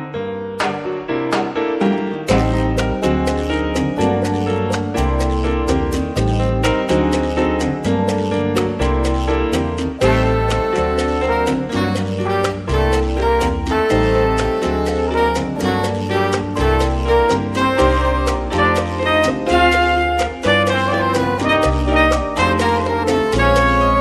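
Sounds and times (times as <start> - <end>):
Latin jazz music: 0.2 - 24.0.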